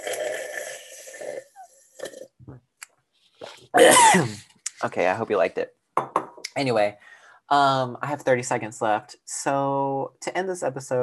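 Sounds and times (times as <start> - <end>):
quiet tea sipping and slurping for ASMR: 0.0 - 2.4
speech: 3.8 - 5.8, 6.6 - 11.0.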